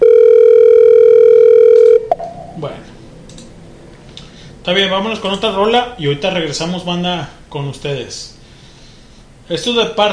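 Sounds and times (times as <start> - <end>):
outgoing call ringback tone: 0.0 - 2.3
speech: 4.7 - 8.4, 9.5 - 10.1.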